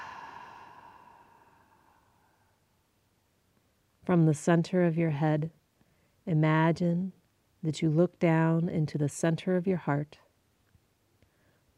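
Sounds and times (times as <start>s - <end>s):
slow exhaled breath during guided breathing: 0.0s - 2.6s
speech: 4.1s - 5.6s, 6.3s - 10.2s.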